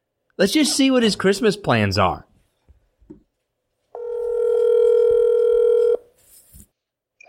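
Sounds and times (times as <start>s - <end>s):
speech: 0.4s - 2.3s
telephone dialing and ringing tone as a call is placed: 4.0s - 6.0s.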